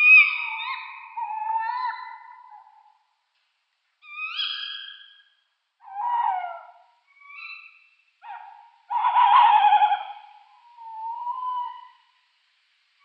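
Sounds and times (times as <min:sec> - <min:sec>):
tawny owl pair display calls: 0:00.0 - 0:03.0, 0:04.0 - 0:12.2.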